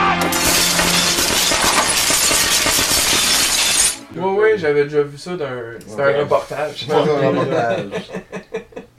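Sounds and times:
light bulbs bursting and shattering: 0:00.2 - 0:04.1
crackling and tinkling glass: 0:00.3 - 0:04.0
speech: 0:04.6 - 0:08.3
laughter: 0:06.9 - 0:08.9.

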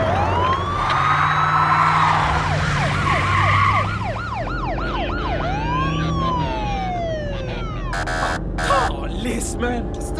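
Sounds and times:
police car siren wailing: 0:00.0 - 0:09.1.

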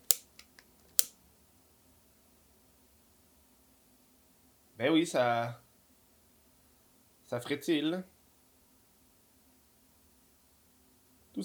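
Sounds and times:
crackling snaps from lighter flame held to fresh snow: 0:00.0 - 0:01.1
speech: 0:04.8 - 0:05.6, 0:07.3 - 0:08.1.

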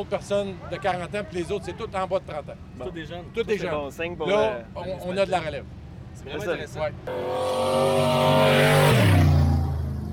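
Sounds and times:
speech: 0:00.0 - 0:09.2
stock car engine revving: 0:07.1 - 0:10.1.

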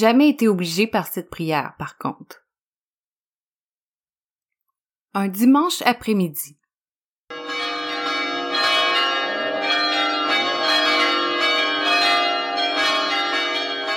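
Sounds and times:
speech: 0:00.0 - 0:02.4, 0:05.2 - 0:06.6
church bells pealing: 0:07.3 - 0:13.9.

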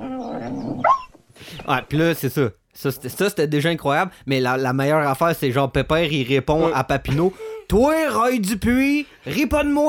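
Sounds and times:
dachshund yelping whine: 0:00.0 - 0:01.2
speech: 0:01.6 - 0:09.8.

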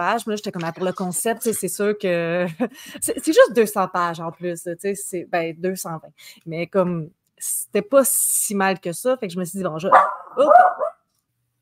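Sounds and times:
speech: 0:00.0 - 0:11.0
dog barking and yipping: 0:09.9 - 0:11.0.

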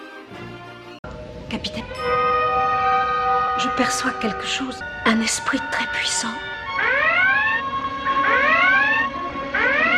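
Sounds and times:
speech: 0:01.5 - 0:02.4, 0:03.6 - 0:06.6
electronic alarm siren whooping: 0:02.1 - 0:05.1, 0:06.4 - 0:09.9.

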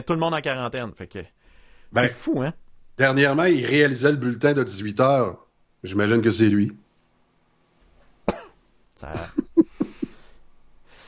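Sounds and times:
speech: 0:00.0 - 0:06.8, 0:09.0 - 0:09.5
single sharp cough: 0:08.3 - 0:10.2
laughter: 0:09.0 - 0:10.2.

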